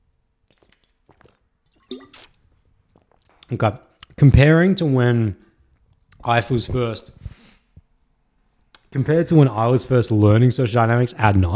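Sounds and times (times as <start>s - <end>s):
person drinking water with wet clicks, sip and swallow: 0.4s - 3.4s
speech: 3.5s - 5.4s, 6.2s - 7.2s, 8.9s - 11.5s.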